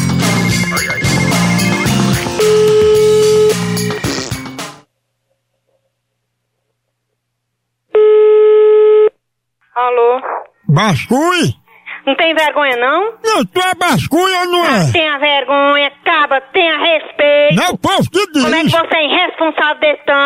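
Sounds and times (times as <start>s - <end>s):
music: 0.0s - 4.9s
steady electronic telephone tone as a call is placed: 0.4s - 3.7s, 7.9s - 9.2s
speech: 10.7s - 20.2s.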